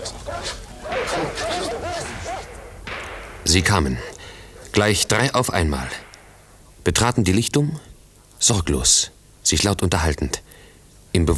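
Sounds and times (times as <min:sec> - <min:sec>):
hunting dogs barking: 0:00.0 - 0:06.6
rustling: 0:00.0 - 0:07.0
speech: 0:03.5 - 0:04.1, 0:04.8 - 0:06.0, 0:06.8 - 0:10.5, 0:11.1 - 0:11.3.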